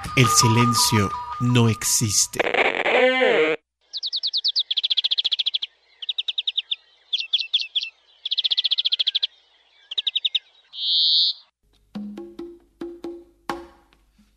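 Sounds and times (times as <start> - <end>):
speech: 0.1 - 2.5
birds singing in high rapid chirps and trills: 3.8 - 11.5.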